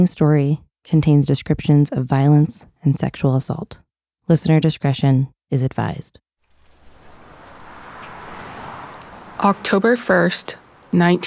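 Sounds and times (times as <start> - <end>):
speech: 0.0 - 6.2, 9.4 - 11.2
steady rain falling in Northeast Washington D.C.: 6.4 - 11.2.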